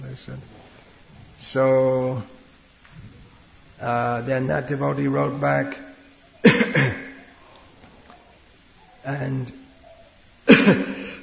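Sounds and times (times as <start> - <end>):
speech: 0.2 - 0.6, 1.4 - 2.4, 3.8 - 7.0, 9.0 - 9.6, 10.6 - 11.0
adult coughing: 6.4 - 7.3, 10.5 - 11.2.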